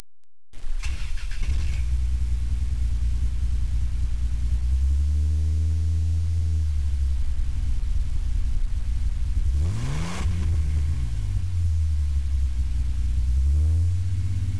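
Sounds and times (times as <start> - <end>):
engine exhaust: 0.6 - 14.5.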